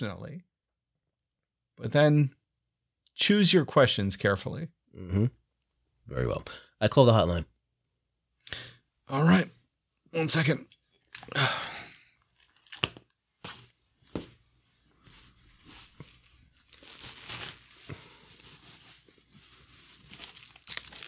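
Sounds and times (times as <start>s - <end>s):
speech: 0.0s - 0.5s, 1.8s - 2.4s, 3.2s - 5.4s, 6.1s - 7.5s, 8.5s - 11.7s
rustling and fumbling with a small headset: 12.4s - 21.0s
crinkly burst as a small headset is taken out: 15.9s - 21.0s.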